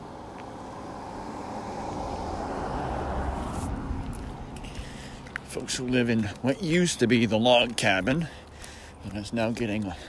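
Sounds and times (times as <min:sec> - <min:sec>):
car driving past outdoors: 0:00.0 - 0:05.6
speech: 0:05.5 - 0:08.4, 0:09.0 - 0:10.0.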